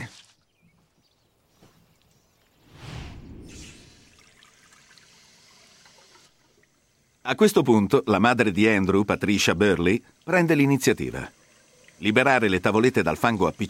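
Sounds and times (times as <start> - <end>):
water trickling: 3.9 - 13.6
speech: 7.3 - 11.4, 12.0 - 13.6.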